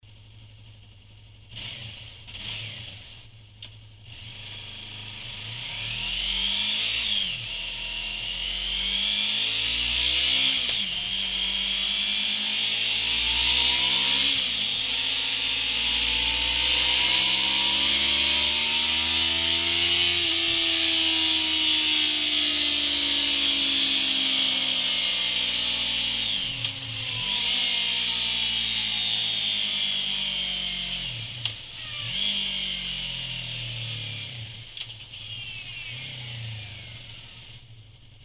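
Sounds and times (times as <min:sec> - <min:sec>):
stock Yamaha MT 03 motorcycle engine: 0:00.0 - 0:38.2.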